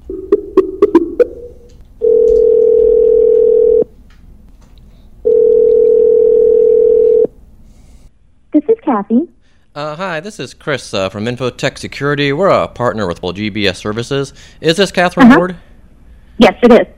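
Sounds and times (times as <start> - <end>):
long steady telephone tones through a handset: 0.0 - 3.9, 5.2 - 7.3
speech: 8.9 - 15.7, 16.4 - 16.9.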